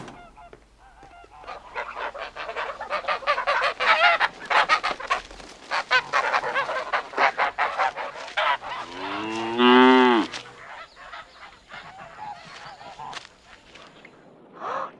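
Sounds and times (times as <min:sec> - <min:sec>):
fowl clucking in a farmyard: 0:00.0 - 0:14.0
geese honking in a farmyard: 0:00.0 - 0:14.0
cow mooing: 0:08.6 - 0:10.6.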